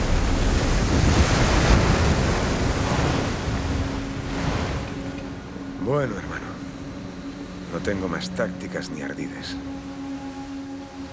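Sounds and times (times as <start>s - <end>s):
broadband rush of ocean surf: 0.0s - 6.6s
ship pushing through rolling ocean waves: 0.0s - 8.7s
wind over the ocean: 0.0s - 11.1s
speech: 5.9s - 6.4s, 7.8s - 10.0s.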